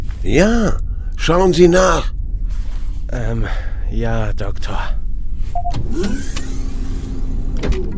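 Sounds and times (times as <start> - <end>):
speech: 0.2 - 2.1, 3.1 - 5.0, 5.7 - 6.5
motorized shuttle door opening with mechanical whir: 5.6 - 7.9.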